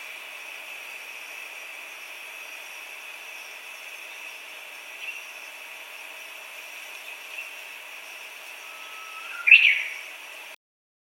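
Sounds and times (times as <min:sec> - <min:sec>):
steady background hiss: 0:00.0 - 0:10.6
Japanese bush warbler whistling song: 0:02.4 - 0:06.3, 0:06.9 - 0:10.2.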